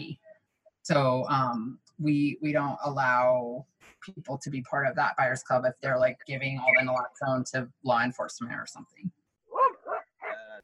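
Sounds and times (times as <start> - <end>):
speech: 0.9 - 9.2
dog barking: 9.5 - 10.5.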